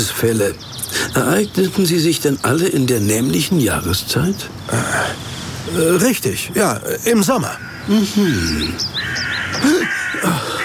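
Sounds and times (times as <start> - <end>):
thin higher bird chirps: 0.0 - 10.6
speech: 0.2 - 10.0
crows cawing: 7.3 - 10.6.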